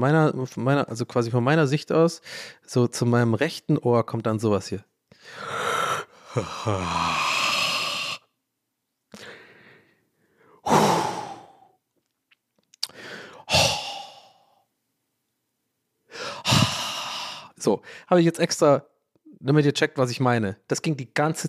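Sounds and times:
speech: 0.0s - 5.6s, 6.3s - 7.4s, 17.6s - 21.4s
person imitating a man sighing loudly in a sauna: 5.3s - 8.3s, 10.6s - 11.8s, 12.8s - 14.6s, 16.1s - 17.6s.

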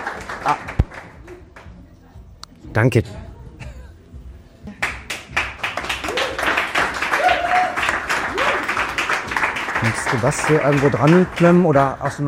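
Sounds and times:
audience applause: 0.0s - 1.3s, 4.8s - 11.8s
speech: 0.4s - 0.7s, 2.8s - 3.2s, 9.9s - 12.2s
faint whoops: 6.0s - 8.7s.

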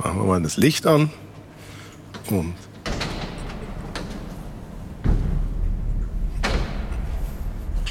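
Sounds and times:
speech: 0.2s - 1.3s, 2.3s - 2.7s
huge heavy steel door slamming shut in a dam tunnel: 2.8s - 7.8s
soft thud echoing: 2.9s - 7.4s
lingering low rumble: 3.0s - 7.8s.

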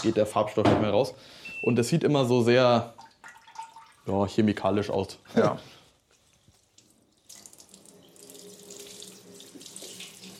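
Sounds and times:
speech: 0.0s - 3.0s, 4.0s - 5.8s
tap water running while rinsing a pump lid: 3.0s - 4.0s, 6.5s - 10.3s.

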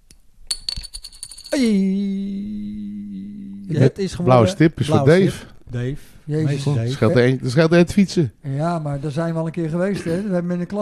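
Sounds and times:
plastic toy coin spinning down on a hard surface: 0.5s - 1.6s
speech: 1.5s - 2.4s, 3.7s - 10.8s.

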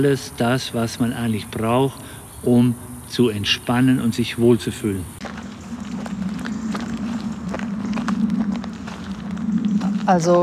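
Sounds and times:
speech: 0.0s - 5.2s, 10.1s - 10.4s
constant low hum: 2.4s - 10.4s
footsteps of people strolling very slowly during a forest-bathing walk: 5.2s - 10.4s.

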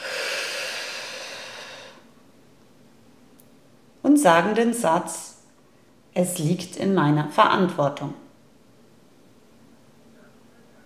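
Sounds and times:
long breathy exhalation through the mouth: 0.0s - 2.1s
speech: 4.2s - 5.3s, 6.2s - 8.2s.

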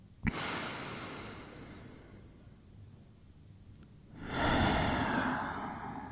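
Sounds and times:
deep breath in and out during a guided meditation: 0.3s - 2.4s, 4.1s - 6.0s.

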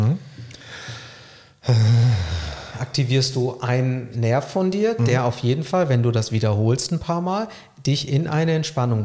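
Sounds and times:
person breathing in and out: 0.2s - 2.9s
speech: 1.7s - 2.0s, 3.0s - 9.0s.

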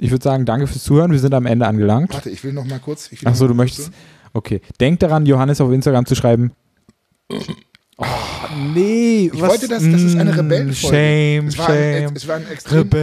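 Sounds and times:
speech: 0.0s - 6.6s, 7.3s - 13.0s
long loud drawn-out burp: 7.3s - 8.8s.

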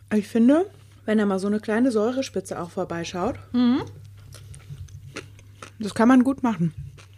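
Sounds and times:
low steady hum: 0.0s - 7.1s
speech: 0.1s - 4.4s, 5.8s - 6.8s
chewing food: 3.9s - 7.1s.

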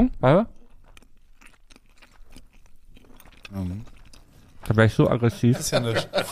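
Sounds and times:
speech: 0.0s - 0.6s, 3.5s - 3.9s, 4.7s - 6.3s
person chewing wetly with mouth closed: 0.5s - 5.0s
laughter: 5.1s - 6.3s.

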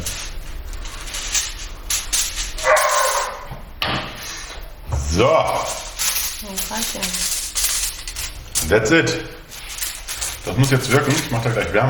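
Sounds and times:
hungry dog barking and yipping: 2.6s - 3.5s
speech: 5.2s - 5.8s, 6.4s - 7.4s, 8.6s - 9.4s, 10.4s - 11.8s.

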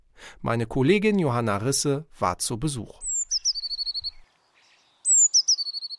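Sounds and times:
speech: 0.4s - 3.0s
songbird singing in trees: 2.8s - 5.9s.

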